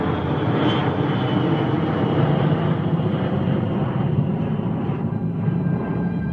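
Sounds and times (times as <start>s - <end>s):
jet airliner engines roaring: 0.0s - 6.3s.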